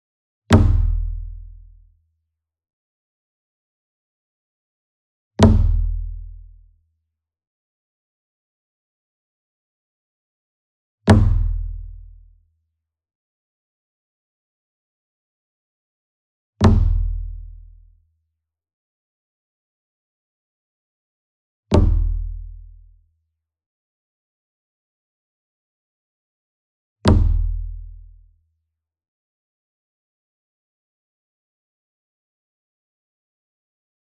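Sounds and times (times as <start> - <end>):
single taiko drum flam with soft beater: 0.5 - 1.5, 5.4 - 6.4, 11.1 - 12.0, 16.6 - 17.5, 21.7 - 22.6, 27.1 - 27.9.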